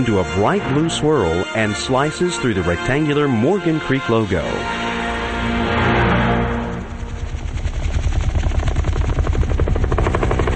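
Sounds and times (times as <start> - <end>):
speech: 0.0 - 5.8
helicopter speeding overhead above water dotted with small islands: 3.0 - 10.5.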